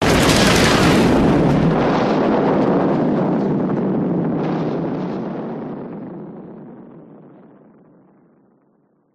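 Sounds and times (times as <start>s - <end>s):
gun cannon firing: 0.0s - 5.2s.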